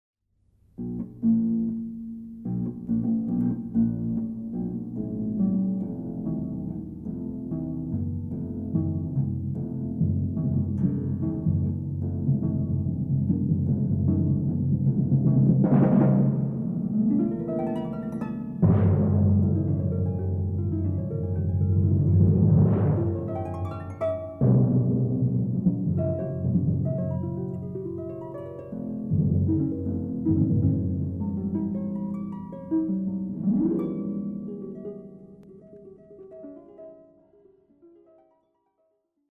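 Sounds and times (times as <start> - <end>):
harp: 0.8 - 38.4
drums: 6.7 - 34.0.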